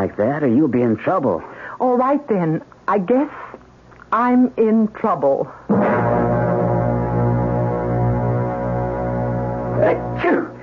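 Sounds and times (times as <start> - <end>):
speech: 0.1 - 3.4, 4.1 - 5.9
steady droning tonal bed: 5.7 - 10.6
person sneezing: 9.8 - 10.6.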